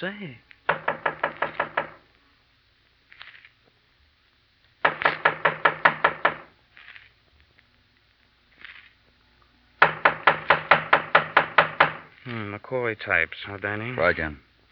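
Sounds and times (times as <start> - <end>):
speech: 0.0 - 0.5, 12.6 - 14.5
rapid loud knocking on a door: 0.7 - 2.0, 4.8 - 6.5, 9.8 - 12.1.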